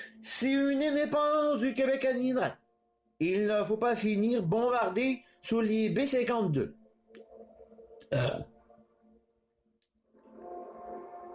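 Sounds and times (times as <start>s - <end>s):
speech: 0.2s - 2.6s, 3.2s - 6.8s, 8.1s - 8.5s
loud throaty burp: 8.0s - 8.6s.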